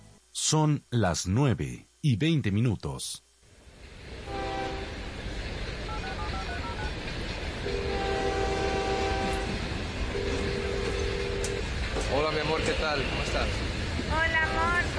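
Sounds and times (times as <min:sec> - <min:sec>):
speech: 0:00.4 - 0:03.3, 0:12.1 - 0:14.8
rail noise rumble: 0:03.4 - 0:14.9
train horn at a station: 0:04.2 - 0:05.0, 0:07.6 - 0:13.4, 0:14.2 - 0:14.9.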